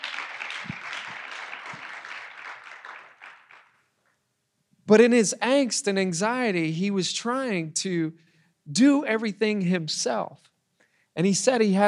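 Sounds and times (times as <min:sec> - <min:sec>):
audience clapping: 0:00.0 - 0:03.9
speech: 0:04.9 - 0:10.5, 0:11.2 - 0:11.8.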